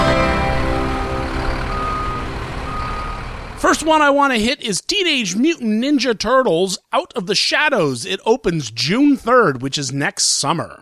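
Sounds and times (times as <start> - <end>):
loud steady truck engine rumble: 0.0 - 4.2
truck reversing alarm beeping: 0.8 - 3.4
speech: 3.6 - 10.8.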